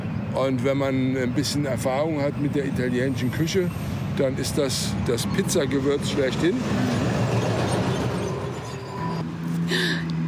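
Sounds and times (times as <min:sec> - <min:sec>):
speech: 0:00.4 - 0:07.2
dense continuous roar of train wheels on rails: 0:02.8 - 0:10.2
high metallic squeal of train wheels: 0:03.0 - 0:04.1, 0:05.1 - 0:09.3
train rumbling past: 0:03.1 - 0:09.2.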